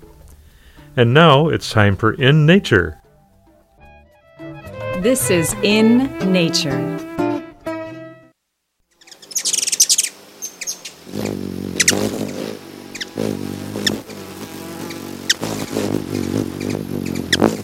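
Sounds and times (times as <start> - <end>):
speech: 1.0 - 3.0, 5.0 - 7.1
hummingbird chirping and twittering: 8.9 - 17.6.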